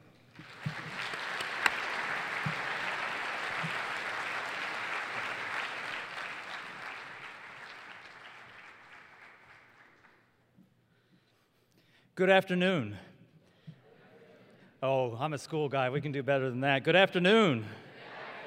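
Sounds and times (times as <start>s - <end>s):
audience of teachers students and members applauding to welcome a speaker: 0.3s - 10.3s
speech: 12.2s - 13.1s, 14.8s - 17.8s.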